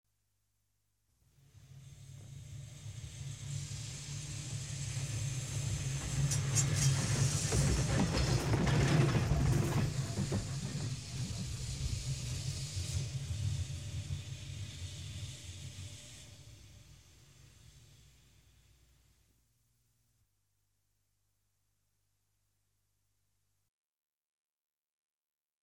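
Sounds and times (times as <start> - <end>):
tram: 1.5 - 18.6
trolleybus: 1.9 - 18.0.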